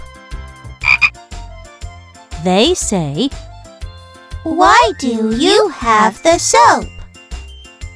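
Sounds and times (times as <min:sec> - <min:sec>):
toad croaking in low rattling calls: 0:00.8 - 0:01.2
speech: 0:02.4 - 0:03.5, 0:04.4 - 0:07.0.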